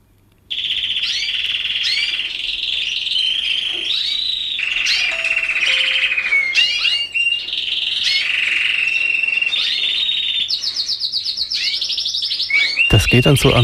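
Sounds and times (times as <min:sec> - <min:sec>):
songbird bred for its song singing: 0:00.5 - 0:13.6
speech: 0:13.1 - 0:13.6.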